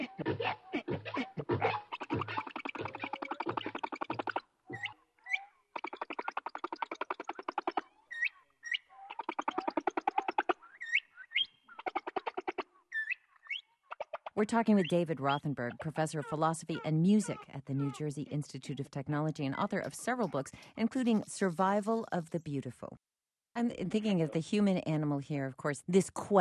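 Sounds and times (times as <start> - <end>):
sped-up humpback whale song: 0.0 - 20.3
speech: 14.4 - 26.4.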